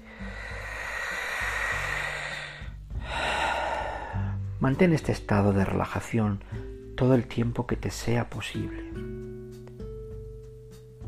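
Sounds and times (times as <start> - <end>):
slow breath in and long airy exhale: 0.0 - 4.6
soft low sustained musical drone: 0.0 - 5.3
speech: 4.6 - 9.1.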